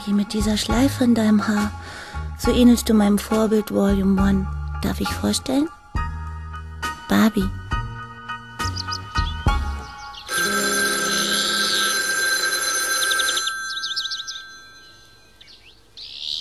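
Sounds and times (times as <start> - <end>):
speech: 0.0 - 5.8, 7.1 - 7.6
quieter high chirping: 8.6 - 10.3, 13.3 - 16.3
telephone ringing: 10.3 - 15.4.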